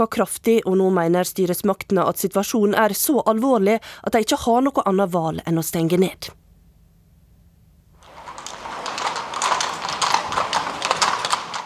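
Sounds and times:
speech: 0.0 - 6.4
horse-drawn carriage hooves clip-clopping on a hard street in Vienna Austria: 8.0 - 11.6.

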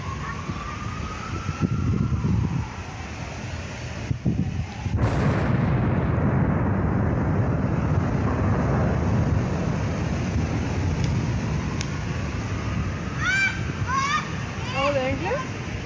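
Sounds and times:
low rolling roar after explosion: 0.0 - 15.8
traffic rumble: 0.0 - 15.8
wind: 0.0 - 15.8
distant bomb explosion: 5.0 - 11.7.

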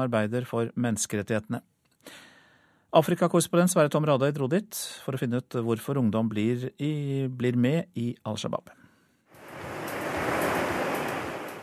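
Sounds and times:
speech: 0.0 - 2.3, 2.9 - 8.8
soft lazy ocean swells washing onto a chalk-white beach: 9.4 - 11.6.

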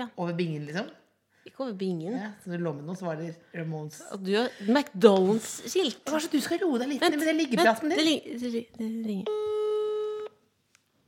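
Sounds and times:
speech: 0.0 - 9.5
electronic telephone ringback tone: 9.3 - 10.4.

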